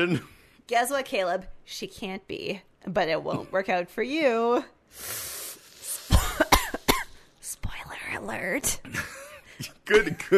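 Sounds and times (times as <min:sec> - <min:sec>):
speech: 0:00.0 - 0:05.3, 0:07.5 - 0:10.3
person having a coughing fit: 0:06.1 - 0:07.1.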